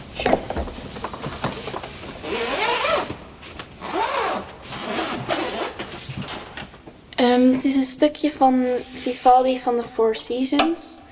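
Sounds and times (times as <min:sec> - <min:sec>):
zipper on a violin case being pulled open: 0:02.2 - 0:03.1, 0:03.8 - 0:06.0
speech: 0:07.6 - 0:11.0.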